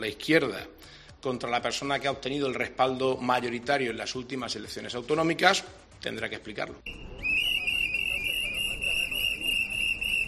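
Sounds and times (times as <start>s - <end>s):
speech: 0.0s - 7.2s
busy murmur of people: 6.8s - 10.2s
protesters blowing whistles at a train station entrance: 6.9s - 10.2s.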